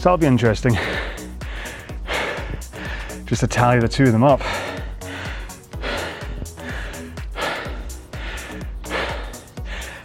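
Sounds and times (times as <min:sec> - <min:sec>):
speech: 0:00.0 - 0:01.1, 0:03.3 - 0:04.7
heavy breathing in ragged gasps: 0:00.7 - 0:03.3, 0:04.3 - 0:10.0.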